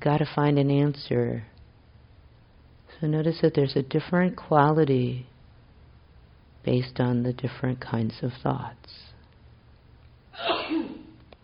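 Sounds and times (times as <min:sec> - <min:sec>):
speech: 0:00.0 - 0:01.5, 0:03.0 - 0:05.3, 0:06.6 - 0:09.1, 0:10.4 - 0:11.0
sharp breathy sneeze: 0:10.4 - 0:11.2.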